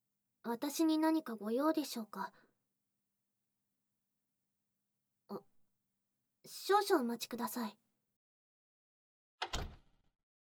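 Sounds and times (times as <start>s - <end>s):
speech: 0.4s - 2.4s, 6.5s - 7.8s
door swinging shut with click and thud: 9.4s - 9.9s.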